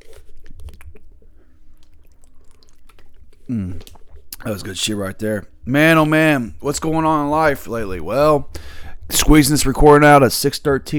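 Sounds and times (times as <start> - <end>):
person swigging water from a bottle: 0.0 - 5.6
speech: 3.5 - 10.9.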